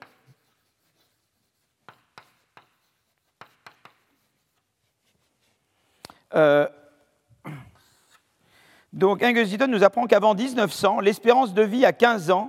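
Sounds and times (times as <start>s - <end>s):
marker writing a name on a board: 0.0s - 5.7s, 7.8s - 8.3s
speech: 6.4s - 6.8s, 9.0s - 12.4s.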